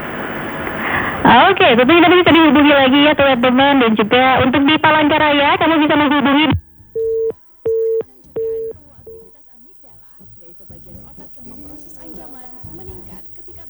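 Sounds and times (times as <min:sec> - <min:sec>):
speech: 0:01.2 - 0:06.6
busy tone beeps on a disconnected telephone line: 0:02.0 - 0:09.3.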